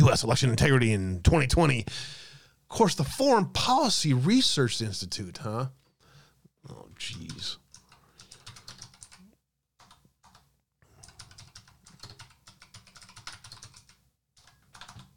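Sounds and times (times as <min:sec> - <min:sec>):
speech: 0:00.1 - 0:05.8, 0:06.6 - 0:07.6
rapid typing on a computer keyboard: 0:07.3 - 0:15.1.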